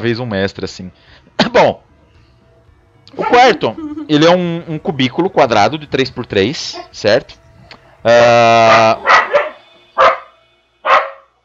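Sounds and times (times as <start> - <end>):
speech: 0.0 - 1.9, 3.1 - 7.4, 8.0 - 9.2
dog barking: 7.8 - 11.3
dog yowling: 7.9 - 10.3.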